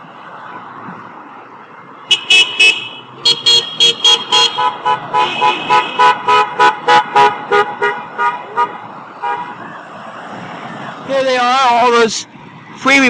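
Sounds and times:
steady street noise: 0.0 - 13.0
many car horns honking at protesters in a hospital zone: 2.0 - 9.6
speech: 12.0 - 13.0.

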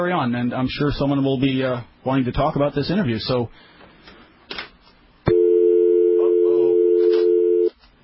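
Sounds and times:
speech: 0.0 - 3.8
long steady tone of a telephone call failing to connect: 5.3 - 7.7.

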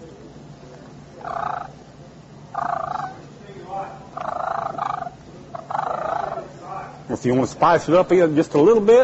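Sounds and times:
hunter's turkey call clucking and purring: 1.2 - 1.9, 2.5 - 3.3, 4.1 - 6.6
speech: 7.1 - 9.0.

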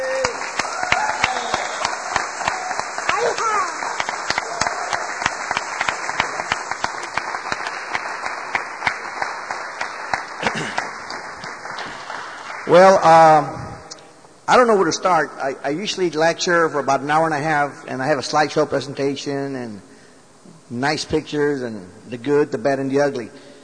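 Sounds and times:
audience applauding a speaker: 0.0 - 13.4
speech: 12.7 - 13.6, 14.5 - 19.9, 20.7 - 23.5.

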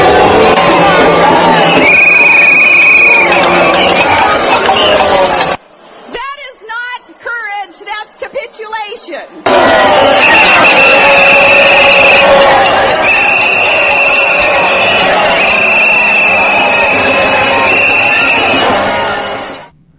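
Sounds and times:
large rally crowd roaring and cheering: 0.0 - 6.4, 9.3 - 19.7
shrill sustained whistles: 1.4 - 4.1, 10.0 - 19.6.

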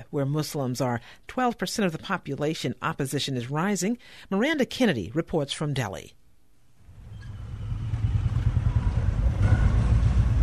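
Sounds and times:
speech: 0.0 - 6.2
busy city street traffic with rickshaws and scooters: 6.9 - 10.4
small engines droning and revving: 6.9 - 10.4.

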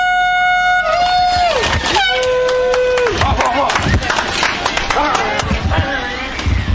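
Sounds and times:
air horn blasts starting a beginners' race: 0.0 - 1.4
crowd cheering: 0.0 - 6.4
scattered clapping: 1.4 - 5.7.

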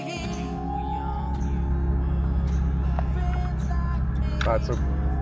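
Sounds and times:
car engine rumble while driving in among tents: 0.1 - 5.1
speech: 4.5 - 4.9.

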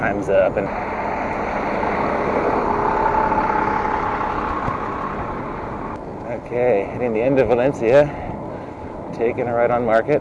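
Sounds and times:
speech: 0.0 - 1.1, 6.5 - 8.2, 9.2 - 10.1
garbage truck idling on a city street: 0.7 - 6.0.

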